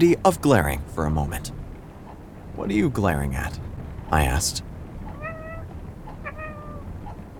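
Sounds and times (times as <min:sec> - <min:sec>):
speech: 0:00.0 - 0:01.6, 0:02.6 - 0:04.7
steady low noise: 0:00.0 - 0:07.3
faint cat chirp: 0:05.1 - 0:05.6, 0:06.2 - 0:06.9
cat meowing softly: 0:05.2 - 0:06.9.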